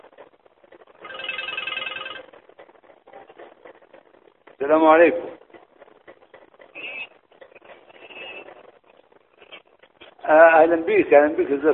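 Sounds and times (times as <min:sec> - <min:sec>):
mobile phone ringing during a lecture in a mosque: 0:01.0 - 0:02.3
speech: 0:04.6 - 0:05.4, 0:10.6 - 0:11.7.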